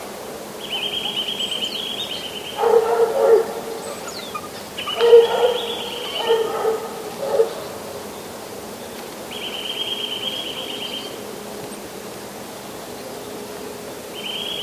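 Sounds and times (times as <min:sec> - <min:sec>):
Eurasian nuthatch piping trills in frost: 0:00.6 - 0:11.2, 0:14.1 - 0:14.6
Eurasian nuthatch hoarse whining calls: 0:00.7 - 0:08.1.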